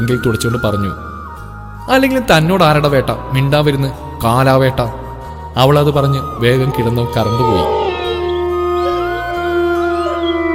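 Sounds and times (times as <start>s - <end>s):
speech: 0.0s - 1.1s, 1.9s - 5.0s, 5.6s - 7.8s
dogs howling: 6.8s - 10.5s.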